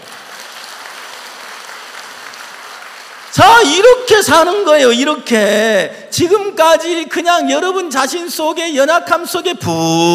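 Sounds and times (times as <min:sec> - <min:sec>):
large crowd applauding: 0:00.0 - 0:03.4
speech: 0:03.4 - 0:10.1.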